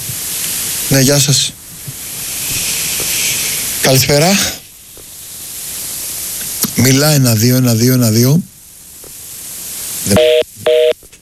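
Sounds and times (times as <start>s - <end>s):
phone line static hiss: 0.0s - 11.2s
speech: 0.9s - 1.6s, 3.9s - 4.6s, 6.8s - 8.5s
phone busy tone beeps after a dropped call: 10.1s - 11.0s.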